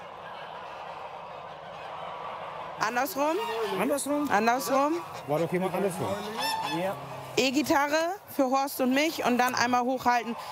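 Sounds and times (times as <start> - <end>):
geese honking on a goose farm during vaccination: 0.0 - 10.5
speech: 2.9 - 10.5.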